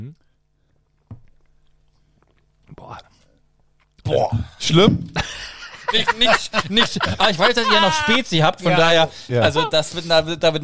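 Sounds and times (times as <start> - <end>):
person biting into and chewing a pickle: 0.6 - 4.0
speech: 4.1 - 10.6
laughter: 5.2 - 10.1.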